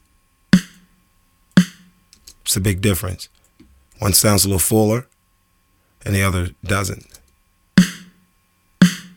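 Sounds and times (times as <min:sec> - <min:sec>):
snare drum hits heavily compressed at a 50-to-1 ratio: 0:00.6 - 0:00.9, 0:01.6 - 0:02.0, 0:07.8 - 0:08.2, 0:08.8 - 0:09.1
speech: 0:02.5 - 0:03.4, 0:04.0 - 0:05.1, 0:06.0 - 0:07.2.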